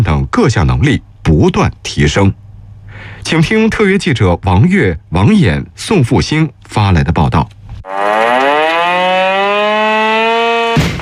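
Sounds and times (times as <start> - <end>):
speech: 0.4 - 2.4, 3.0 - 8.0
military camp alarm siren wailing: 7.8 - 11.0.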